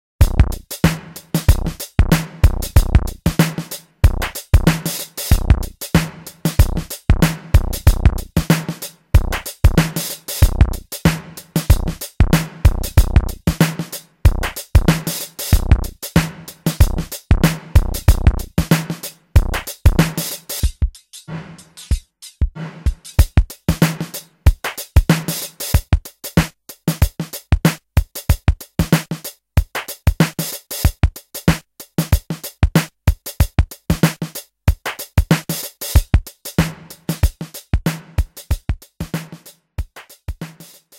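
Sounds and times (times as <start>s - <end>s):
music jam: 0.2s - 40.9s.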